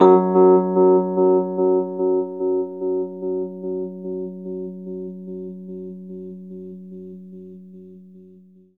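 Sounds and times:
Rhodes electric piano octave F sharp: 0.0 - 6.5.

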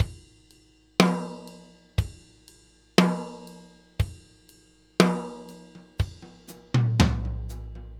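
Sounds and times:
laid-back New York drum loop: 0.0 - 7.9.

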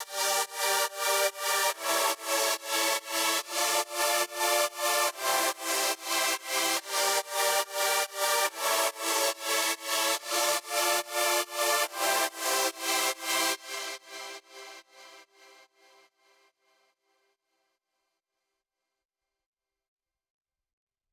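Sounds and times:
wet synth sub pad chorus in G minor at 142 BPM: 0.0 - 14.8.

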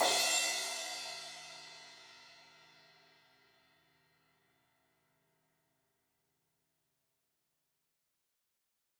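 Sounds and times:
16in crash cymbal struck on the edge: 0.0 - 1.7.

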